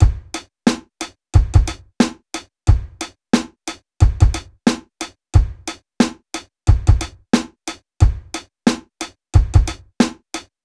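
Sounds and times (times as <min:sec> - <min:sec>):
rock drum beat loop: 0:00.0 - 0:00.8, 0:01.4 - 0:02.1, 0:02.7 - 0:04.8, 0:05.4 - 0:05.8, 0:06.7 - 0:08.8, 0:09.4 - 0:10.1.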